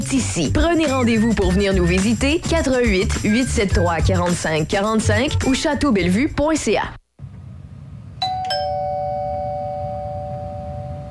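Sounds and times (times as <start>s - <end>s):
speech: 0.1s - 7.0s
two-tone doorbell chime: 8.2s - 11.0s.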